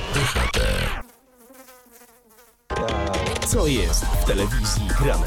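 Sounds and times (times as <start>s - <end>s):
fly buzzing inside a fly trap: 0.2s - 2.9s
speech: 3.5s - 5.2s.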